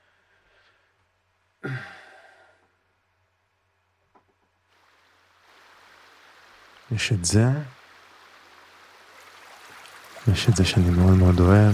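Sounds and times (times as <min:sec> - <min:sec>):
speech: 0:01.6 - 0:01.9, 0:06.9 - 0:07.7, 0:10.3 - 0:11.7
flowing stream water: 0:04.7 - 0:11.7.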